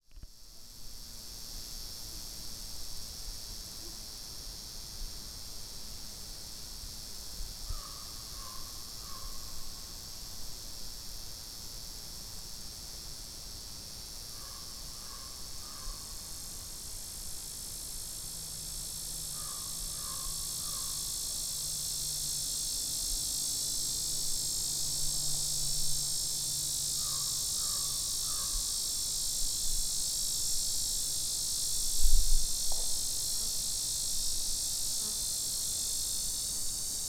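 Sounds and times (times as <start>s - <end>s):
lyric cicadas: 0.0s - 37.0s.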